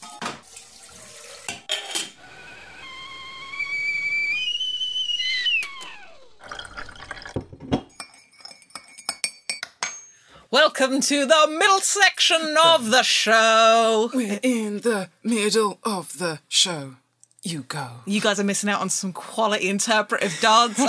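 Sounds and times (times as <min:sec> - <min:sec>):
kettle whistling for a tea break: 0:01.7 - 0:07.2
teacups and crockery clinking: 0:06.4 - 0:10.1
speech: 0:10.5 - 0:20.8.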